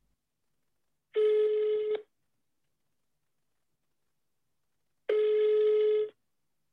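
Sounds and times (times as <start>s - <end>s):
outgoing phone call ringback tone: 1.2s - 2.0s, 5.1s - 6.2s.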